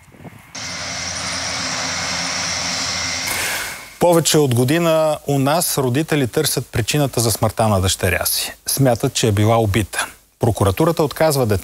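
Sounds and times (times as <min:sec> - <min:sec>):
firefighting propeller aircraft engine drone: 0:00.0 - 0:04.0
speech: 0:04.0 - 0:11.6.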